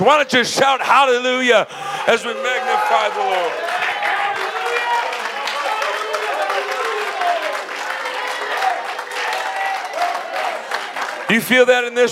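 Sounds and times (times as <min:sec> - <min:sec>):
speech: 0:00.0 - 0:03.8, 0:11.3 - 0:12.1
many voices calling out and shouting: 0:01.7 - 0:11.3
large group clapping: 0:02.2 - 0:12.1.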